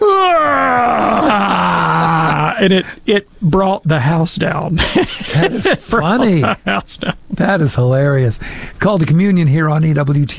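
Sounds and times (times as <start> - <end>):
voice imitating a young boy's loud yawn: 0.0 - 3.0
laughter: 1.0 - 2.8, 4.8 - 7.4
speech: 2.6 - 10.3.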